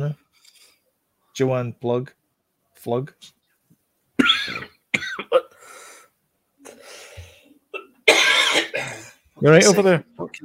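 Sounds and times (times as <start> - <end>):
speech: 1.4 - 2.2, 2.8 - 3.4, 9.4 - 10.4
harsh coughs: 4.2 - 5.6, 7.8 - 9.2.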